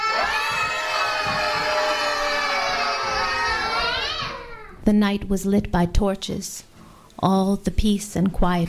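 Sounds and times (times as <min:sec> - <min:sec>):
large crowd of townspeople shouting and screaming in panic in Barletta: 0:00.0 - 0:04.8
speech: 0:04.9 - 0:08.6.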